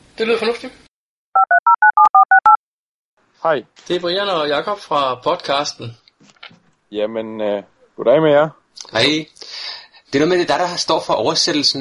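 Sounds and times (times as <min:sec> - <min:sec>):
speech: 0:00.2 - 0:00.8, 0:03.4 - 0:11.8
phone touch-tone dialing beeps: 0:01.4 - 0:02.6.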